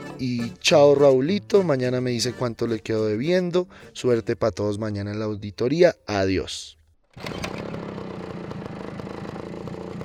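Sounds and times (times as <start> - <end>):
speech: 0.2 - 7.7
motorcycle engine starting and idling: 7.0 - 10.0.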